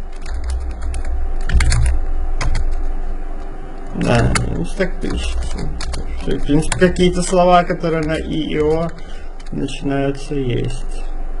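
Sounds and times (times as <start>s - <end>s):
typing on a computer keyboard: 0.1s - 2.9s, 4.0s - 9.6s
speech: 4.0s - 11.1s.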